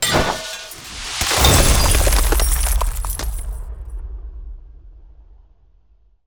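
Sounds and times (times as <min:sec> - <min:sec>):
ice spell damage with frozen dagger: 0:00.0 - 0:03.7.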